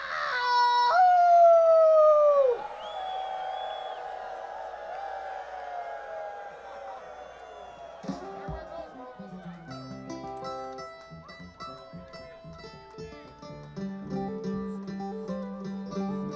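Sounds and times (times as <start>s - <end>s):
man howling in long sustained wavering tones: 0.0s - 2.7s.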